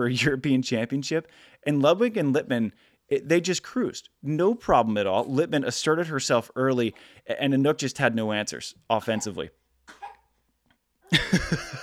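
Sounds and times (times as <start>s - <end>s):
speech: 0.0s - 9.6s, 11.3s - 11.8s
man coughing while eating: 9.1s - 10.3s
laughter: 11.1s - 11.8s.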